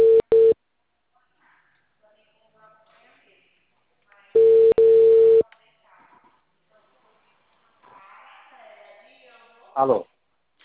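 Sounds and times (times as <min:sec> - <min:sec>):
telephone line tone while placing a call: 0:00.0 - 0:00.6, 0:04.4 - 0:05.4
speech: 0:09.8 - 0:10.1.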